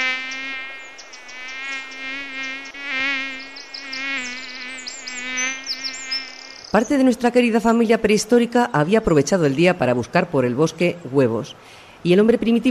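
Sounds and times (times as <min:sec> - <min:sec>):
flies buzzing: 0:00.0 - 0:06.8
speech: 0:06.8 - 0:12.6.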